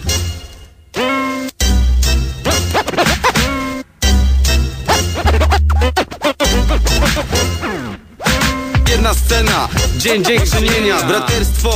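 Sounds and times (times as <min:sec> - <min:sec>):
hip-hop remix with thumping bass beat: 0:01.0 - 0:11.7
turntable scratching: 0:02.4 - 0:03.8, 0:04.7 - 0:11.7
speech: 0:10.0 - 0:11.7.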